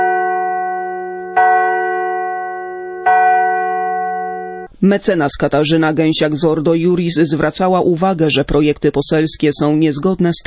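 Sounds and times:
large bell struck by a passer-by: 0:00.0 - 0:04.8
speech: 0:04.8 - 0:10.4.

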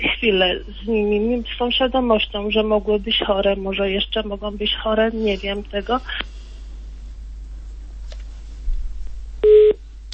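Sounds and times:
low hum on the telephone line: 0:00.0 - 0:10.1
speech: 0:00.2 - 0:06.4
telephone beep after a dropped call: 0:09.4 - 0:09.8.

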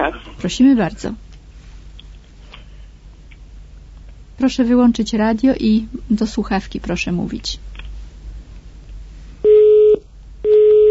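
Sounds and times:
speech: 0:00.1 - 0:01.2, 0:04.4 - 0:07.7
telephone busy tone after a caller hung up: 0:09.5 - 0:10.9.

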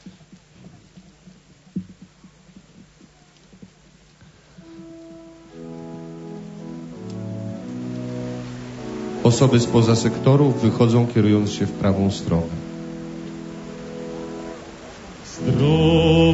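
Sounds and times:
steady outdoor rain: 0:00.0 - 0:16.3
sustained musical tones: 0:04.6 - 0:16.3
speech: 0:09.3 - 0:12.6.

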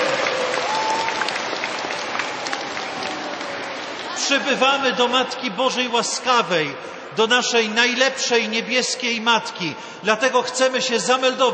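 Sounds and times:
crowd clapping at a sanctuary in Krzeszów, Poland: 0:00.0 - 0:05.1
speech: 0:04.3 - 0:11.5.

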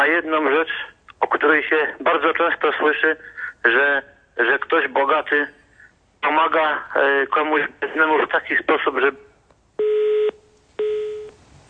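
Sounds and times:
speech: 0:00.0 - 0:05.6, 0:06.2 - 0:09.2
telephone tones from a call failing to connect: 0:09.8 - 0:11.4.

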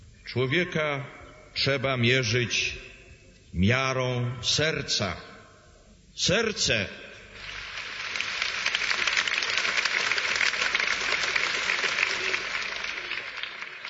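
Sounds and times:
speech: 0:00.3 - 0:02.9, 0:03.6 - 0:05.3, 0:06.2 - 0:07.0
crowd applauding: 0:07.4 - 0:13.8.

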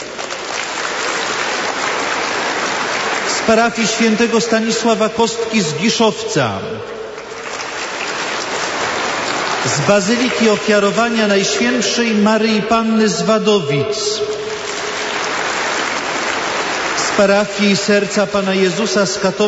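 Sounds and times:
crowd applauding at a gathering: 0:00.0 - 0:05.0, 0:07.1 - 0:11.8, 0:14.3 - 0:17.8
speech: 0:03.5 - 0:07.0, 0:09.7 - 0:14.4, 0:17.2 - 0:19.4.

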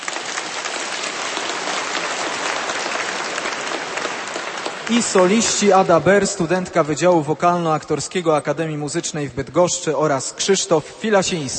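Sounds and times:
large audience applause for volunteer fire brigade wind orchestras: 0:00.0 - 0:07.4
speech: 0:04.9 - 0:11.5.

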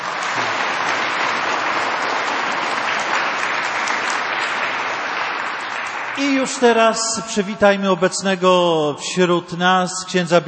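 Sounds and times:
large audience applauding at a religious retreat gathering: 0:00.0 - 0:07.0
speech: 0:06.2 - 0:10.4.

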